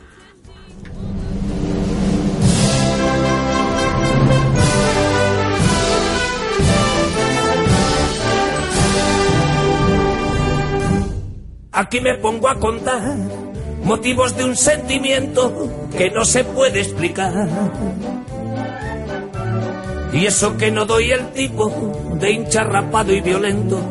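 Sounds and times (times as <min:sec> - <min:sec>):
song with full instrumentation and driving beat: 0:00.0 - 0:23.8
speech: 0:11.8 - 0:18.2, 0:20.2 - 0:23.8.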